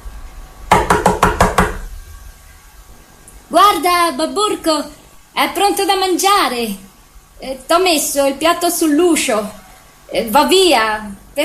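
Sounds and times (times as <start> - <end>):
knocking on the door of a house: 0.7 - 1.9
speech: 3.8 - 6.8, 7.4 - 11.4.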